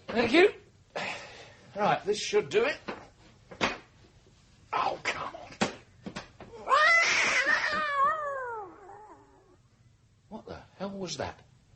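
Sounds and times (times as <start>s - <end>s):
speech: 0.2s - 0.6s, 1.8s - 2.9s, 11.0s - 11.5s
cat yowling loudly: 6.6s - 9.6s.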